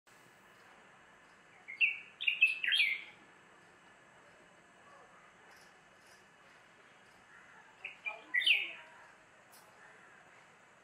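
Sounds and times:
female common nightingale calling to attract a mate: 1.5 - 3.2, 6.9 - 8.9.

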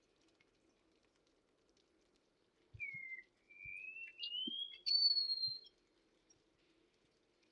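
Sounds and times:
wallcreeper song of thin drawn-out whistles: 2.8 - 5.8.

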